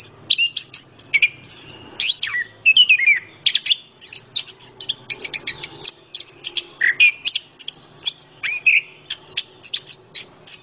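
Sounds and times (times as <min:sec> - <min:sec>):
orange-headed thrush singing vigorously: 0:00.0 - 0:10.6.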